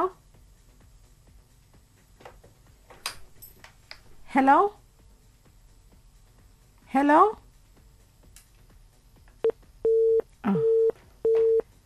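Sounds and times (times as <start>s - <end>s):
speech: 4.4s - 4.8s, 6.9s - 7.4s
telephone busy tone after a phone call is cut off: 9.4s - 11.6s.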